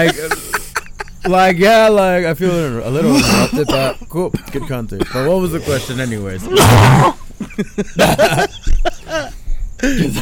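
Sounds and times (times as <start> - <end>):
speech: 0.0 - 0.4, 1.2 - 10.1
people laughing: 0.0 - 3.7, 7.2 - 10.1
single loud harsh cough: 3.0 - 5.4, 6.4 - 7.2.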